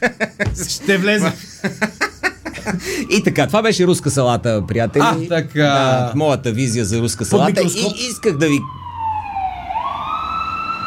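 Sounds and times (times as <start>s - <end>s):
speech: 0.0s - 2.0s, 2.6s - 8.8s
laughter: 0.0s - 3.1s
low rumble of traffic: 0.3s - 9.6s
emergency vehicle siren wailing outside: 2.5s - 10.8s.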